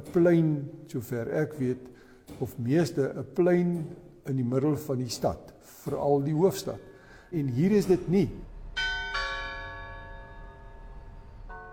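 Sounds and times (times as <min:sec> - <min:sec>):
speech: 0:00.0 - 0:08.5
clock tower bell ringing: 0:07.6 - 0:11.7.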